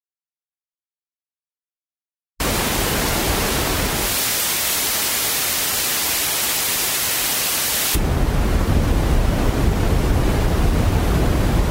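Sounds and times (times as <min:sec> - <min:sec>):
balanced background noise hiss from a tinnitus sound therapy setting: 0:02.4 - 0:10.9.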